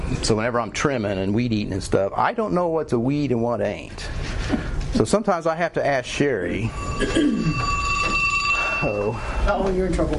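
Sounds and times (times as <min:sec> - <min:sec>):
speech: 0:00.2 - 0:07.7, 0:08.8 - 0:10.1
mobile phone ringing: 0:06.6 - 0:09.6.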